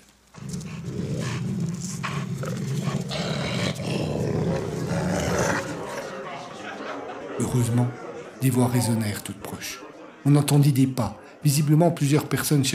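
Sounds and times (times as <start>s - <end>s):
wolf growling in a deep continuous rumble: 0.3s - 6.2s
laughter: 2.8s - 12.7s
speech: 7.5s - 12.7s.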